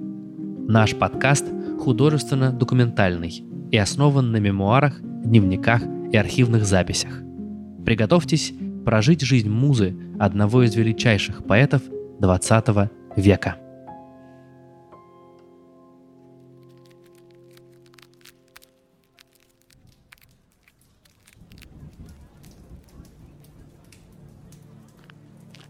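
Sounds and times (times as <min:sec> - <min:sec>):
speech: 0:00.7 - 0:07.2, 0:07.8 - 0:13.6
rain on a cobblestone street: 0:16.6 - 0:25.6.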